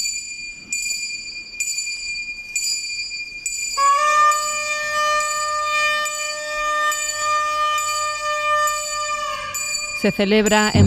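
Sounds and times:
small bell rung in a Holy Week procession in Bonilla de la Sierra: 0:00.0 - 0:10.8
speech: 0:10.0 - 0:10.8.

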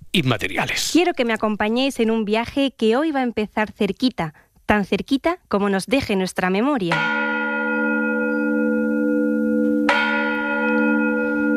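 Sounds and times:
speech: 0:00.2 - 0:07.4
church bell ringing: 0:06.9 - 0:11.5.

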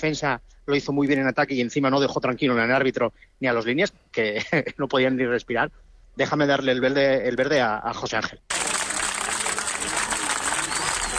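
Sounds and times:
speech: 0:00.0 - 0:08.6
crowd applauding: 0:08.5 - 0:11.1
laughter: 0:08.5 - 0:11.1.

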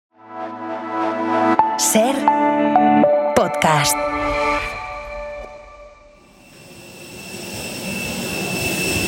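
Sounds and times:
speech: 0:01.8 - 0:04.7
jet aircraft engine whine on airport runway: 0:04.0 - 0:09.0.

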